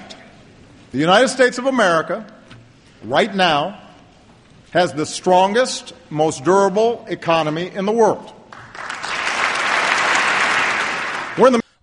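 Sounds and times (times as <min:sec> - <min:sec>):
speech: 0:00.9 - 0:02.4, 0:03.0 - 0:03.8, 0:04.7 - 0:08.4, 0:11.4 - 0:11.6
sizable crowd applauding: 0:08.5 - 0:11.6.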